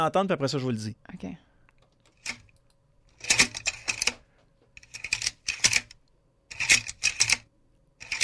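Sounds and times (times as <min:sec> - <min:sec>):
speech: 0:00.0 - 0:01.5
slide projector changing slides with clacking and whirring: 0:01.7 - 0:08.2.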